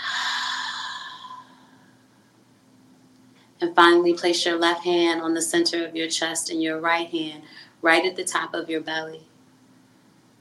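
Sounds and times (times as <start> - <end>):
long audible exhale during a guided breathing exercise: 0.0 - 1.9
speech: 3.6 - 9.3.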